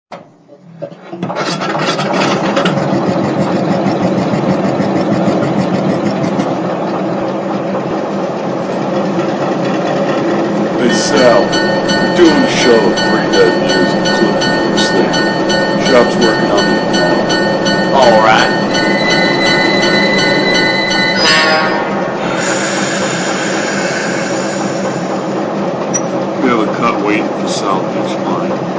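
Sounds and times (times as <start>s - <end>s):
GE 44-ton locomotive: 0.7s - 28.7s.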